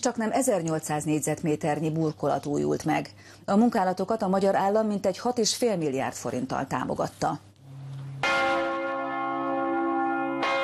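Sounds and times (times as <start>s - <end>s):
speech: 0.0s - 7.5s
church bells ringing: 8.2s - 10.6s.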